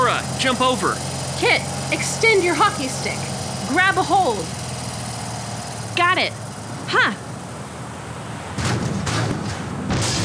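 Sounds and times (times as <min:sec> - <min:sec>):
speech: 0:00.4 - 0:04.6, 0:06.0 - 0:07.2
crackling blast noise: 0:08.6 - 0:10.2
loud rumbling explosion: 0:09.9 - 0:10.2.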